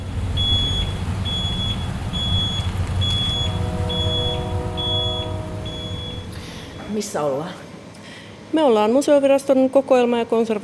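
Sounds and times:
heavy truck engine rumbling carrying shipwreck pieces to Vantaa: 0.0s - 7.4s
high-pitched warning beep: 0.4s - 6.4s
speech: 7.0s - 7.6s, 8.5s - 10.6s.

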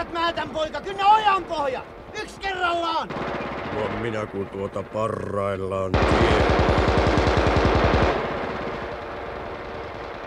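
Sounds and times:
speech: 0.0s - 7.1s
scattered gunshots: 3.0s - 5.0s, 6.0s - 10.2s
automatic gunfire in battle: 3.1s - 4.7s, 6.0s - 10.2s.

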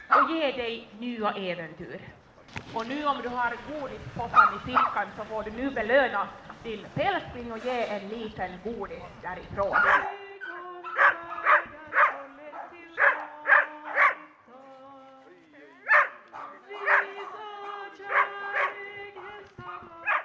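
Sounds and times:
several dogs barking at a devotional gathering: 0.0s - 0.4s, 4.3s - 5.1s, 9.7s - 14.4s, 15.8s - 19.4s, 20.0s - 20.2s
speech: 0.2s - 10.2s
murmur of people's voices at a devotional gathering: 2.0s - 20.2s.

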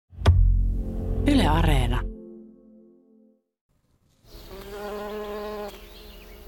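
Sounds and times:
speech: 1.2s - 2.1s
bees buzzing: 4.3s - 6.4s.

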